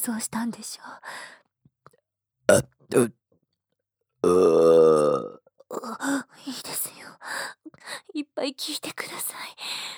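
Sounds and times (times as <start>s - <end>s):
speech: 0.0s - 1.4s, 2.5s - 3.2s, 4.2s - 5.4s, 7.7s - 9.9s
loud burp: 2.5s - 3.1s, 4.2s - 5.4s.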